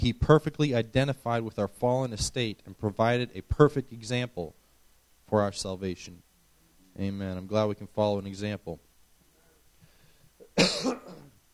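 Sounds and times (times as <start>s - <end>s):
speech: 0.0s - 4.6s, 5.3s - 6.2s, 7.0s - 8.9s, 10.6s - 11.2s
person with a clogged throat coughing raspily: 10.4s - 11.4s
throat clearing: 10.4s - 11.4s.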